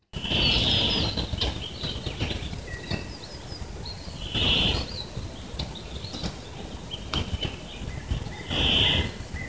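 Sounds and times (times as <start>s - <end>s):
cicadas: 0.2s - 9.4s.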